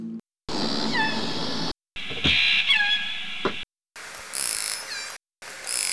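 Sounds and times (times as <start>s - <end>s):
orca calls with harmonic squealing sliding tones: 0.5s - 3.6s.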